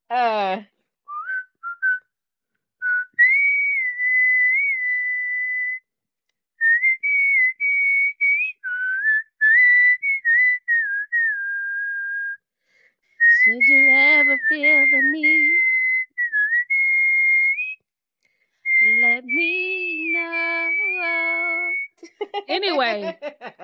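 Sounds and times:
speech: 0.1 - 0.7, 22.5 - 23.6
person whistling a tune: 1.1 - 2.1, 2.8 - 5.9, 6.6 - 12.5, 13.2 - 17.8, 18.6 - 22.0
laughter: 22.0 - 23.6.

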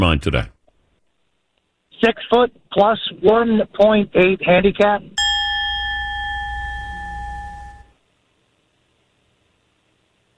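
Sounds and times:
speech: 0.0 - 0.6, 2.0 - 5.2
loud bell ringing: 5.2 - 7.9.

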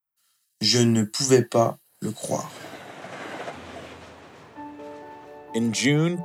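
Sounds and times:
speech: 0.6 - 2.6, 5.5 - 6.2
train travelling to Bordeaux rumbling on rails: 2.6 - 6.2
sustained tones: 3.4 - 6.2.

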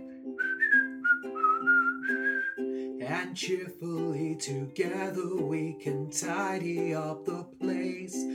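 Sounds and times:
bright clear whistled melody: 0.0 - 8.3
speech: 3.3 - 8.3.

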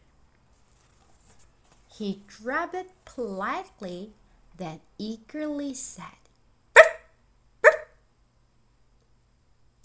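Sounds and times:
speech: 2.0 - 6.2
dog barking: 6.8 - 8.0.

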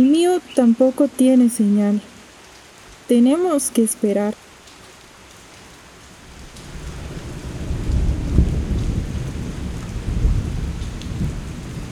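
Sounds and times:
speech: 0.0 - 2.1, 3.1 - 4.4
heavy rain: 0.0 - 11.9
deep thunder rumbling: 6.2 - 11.9.

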